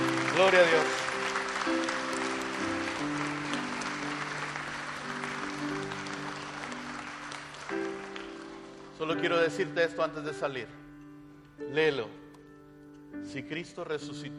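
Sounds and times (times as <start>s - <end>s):
audience applauding after a prayer: 0.0s - 9.1s
sustained organ or keyboard chords: 0.0s - 14.3s
speech: 0.4s - 1.0s, 9.1s - 10.8s, 11.6s - 12.2s, 13.1s - 14.3s.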